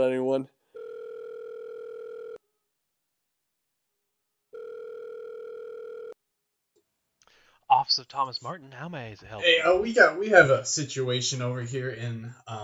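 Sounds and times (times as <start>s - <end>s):
speech: 0.0s - 0.6s, 7.7s - 12.6s
ringback tone of an outgoing phone call: 0.8s - 2.4s, 4.5s - 6.2s.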